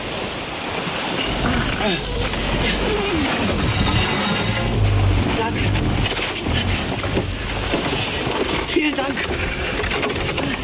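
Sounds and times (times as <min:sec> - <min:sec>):
boat hauled up over sand and stones: 0:00.0 - 0:10.6
surf washing on a shore: 0:00.0 - 0:10.6
indistinct voices: 0:01.2 - 0:09.4
speech: 0:01.8 - 0:03.6, 0:08.8 - 0:10.2.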